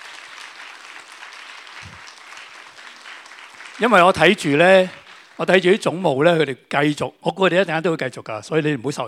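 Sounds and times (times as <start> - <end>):
crowd applauding: 0.0 - 5.8
speech: 3.8 - 9.0.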